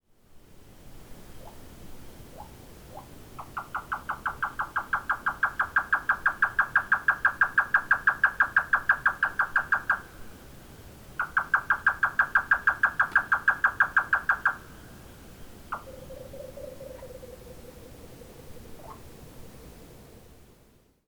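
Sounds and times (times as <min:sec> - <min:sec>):
grey nightjar special call in forest: 0:02.3 - 0:10.3, 0:11.2 - 0:15.0, 0:15.6 - 0:20.2.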